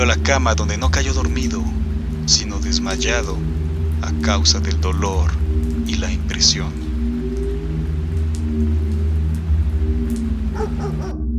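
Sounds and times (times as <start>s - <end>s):
speech: 0.0s - 6.8s
steady hiss: 0.0s - 10.5s
steady low rumble: 0.0s - 11.3s
dog barking: 10.6s - 11.2s.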